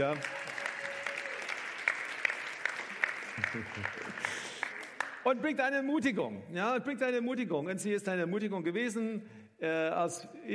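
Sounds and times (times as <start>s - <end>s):
speech: 0.0s - 0.4s, 3.4s - 4.6s, 5.2s - 10.5s
crowd clapping: 0.0s - 5.5s
laughter: 3.3s - 4.5s.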